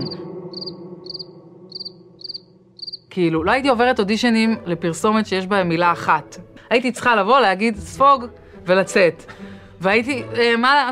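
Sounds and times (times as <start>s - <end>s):
crickets chirping: 0.0s - 3.1s
speech: 3.2s - 10.8s.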